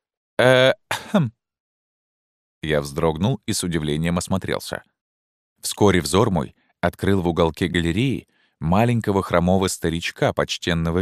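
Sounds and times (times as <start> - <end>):
speech: 0.4 - 1.4, 2.6 - 4.9, 5.6 - 10.9
voice imitating throat clearing: 0.6 - 1.3
voice imitating a light cough: 0.9 - 1.3.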